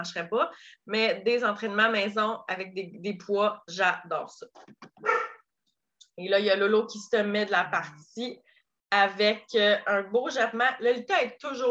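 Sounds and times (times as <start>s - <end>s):
speech: 0.0s - 5.3s, 6.2s - 11.6s
dog barking: 5.0s - 5.4s.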